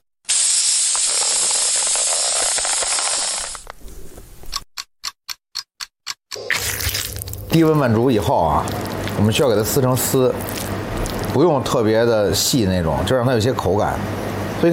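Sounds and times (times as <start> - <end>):
vacuum sealer drawing air out of a bag of spiced meat: 0.3 - 3.6
speech: 7.5 - 14.7.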